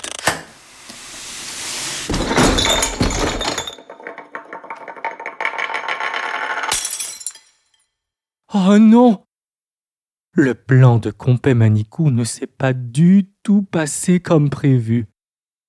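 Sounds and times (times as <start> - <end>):
box falling with a heavy thud: 2.1 - 3.7
terracotta object shattering: 2.1 - 5.8, 6.6 - 7.9
ceramic pieces clinking and scattering across the floor: 2.1 - 7.9
speech: 8.6 - 9.2, 10.4 - 15.1.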